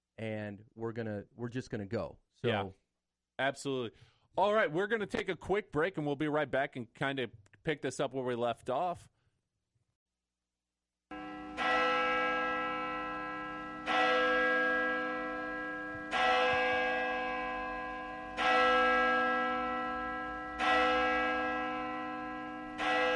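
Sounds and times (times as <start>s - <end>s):
speech: 0.2s - 2.8s, 3.4s - 9.1s
large church bell tolling: 11.1s - 23.1s.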